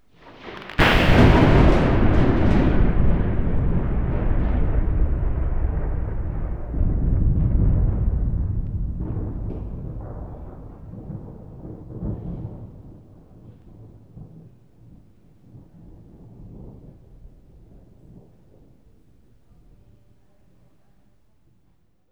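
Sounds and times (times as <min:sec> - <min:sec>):
thunderclap: 0:00.0 - 0:19.8
lightning crack: 0:00.2 - 0:12.9.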